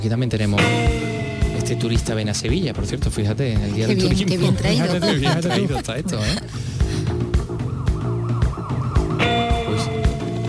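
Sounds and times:
speech: 0.0s - 6.7s
beat-driven music track: 0.6s - 10.4s
laughter: 3.7s - 7.0s
wailing emergency siren: 7.1s - 10.4s.

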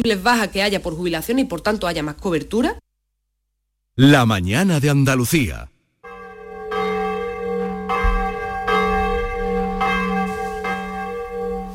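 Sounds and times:
speech: 0.0s - 2.8s, 4.0s - 5.7s
church bells rung by hand: 6.0s - 11.7s.

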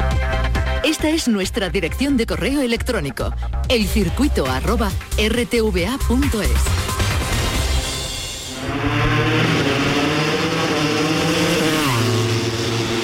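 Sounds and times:
speech: 0.9s - 6.8s
motorcycle engine revving: 6.6s - 13.0s
rushing noise: 7.2s - 13.0s.

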